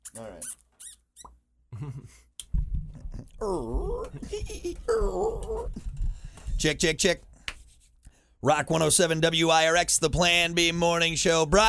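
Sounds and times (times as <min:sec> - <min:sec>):
rubbery plastic bottles squeaking as they are squeezed: 0:00.0 - 0:01.3
speech: 0:00.2 - 0:00.6, 0:03.4 - 0:05.9, 0:06.6 - 0:07.3, 0:08.4 - 0:11.6.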